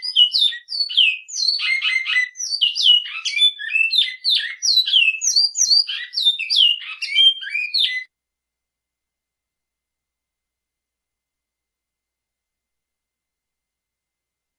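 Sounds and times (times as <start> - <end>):
Great-billed seed finch singing: 0.0 - 8.1.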